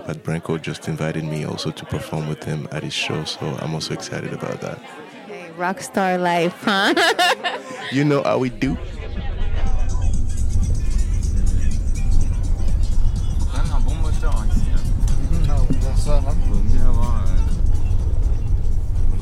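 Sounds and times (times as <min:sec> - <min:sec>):
speech: 0:00.0 - 0:09.0
laughter: 0:06.5 - 0:10.0
car road rumble while driving: 0:08.4 - 0:19.1
car engine drone: 0:08.5 - 0:19.1.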